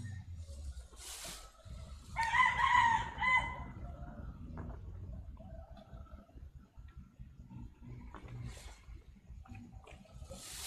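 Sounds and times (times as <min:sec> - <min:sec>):
steady low rumble of outdoor noise: 0:00.0 - 0:10.6
thumping party music: 0:00.0 - 0:10.6
rooster crowing: 0:02.2 - 0:03.9.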